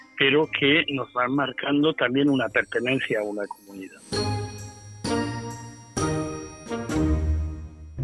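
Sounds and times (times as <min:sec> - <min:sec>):
speech: 0:00.2 - 0:04.3
church bells ringing in a peal: 0:04.1 - 0:07.9.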